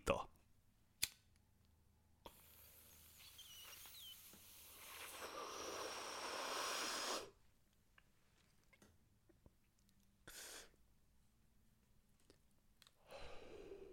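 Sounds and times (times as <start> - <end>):
sharp click: 1.0 - 1.3
person inhaling and exhaling herb smoke: 2.2 - 7.4, 10.2 - 10.8, 13.0 - 13.9.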